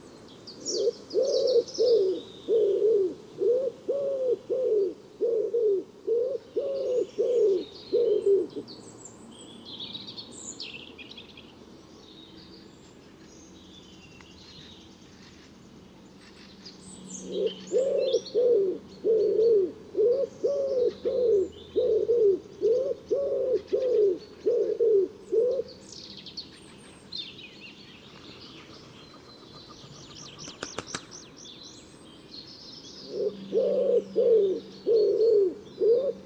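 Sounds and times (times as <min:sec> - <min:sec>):
birds chirping: 0:00.0 - 0:03.0, 0:06.4 - 0:36.2
wood pigeon cooing: 0:00.6 - 0:08.6, 0:17.2 - 0:25.7, 0:33.1 - 0:36.2.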